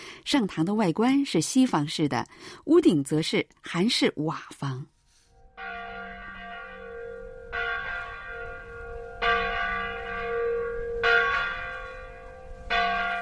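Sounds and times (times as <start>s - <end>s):
speech: 0.2s - 4.9s
church bell tolling across village: 5.4s - 13.2s.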